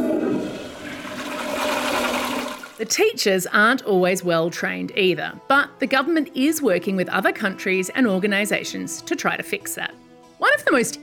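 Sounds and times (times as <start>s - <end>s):
toilet flushing: 0.0s - 2.9s
speech: 2.8s - 11.0s.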